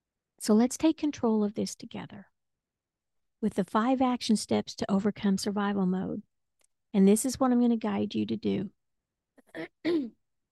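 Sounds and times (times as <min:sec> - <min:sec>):
speech: 0:00.4 - 0:02.3, 0:03.4 - 0:06.3, 0:06.9 - 0:08.8, 0:09.5 - 0:10.2
person clearing throat: 0:09.4 - 0:10.1.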